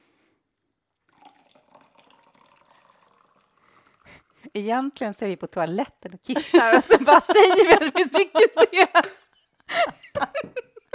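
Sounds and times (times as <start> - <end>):
tea being poured into a cup: 1.0 - 4.6
speech: 4.5 - 9.2
laughter: 6.4 - 10.9.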